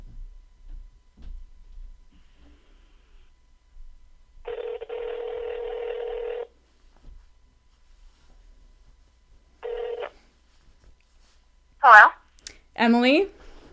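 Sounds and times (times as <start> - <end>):
outgoing telephone call tone: 4.5 - 6.5, 9.7 - 10.1
speech: 12.8 - 13.4.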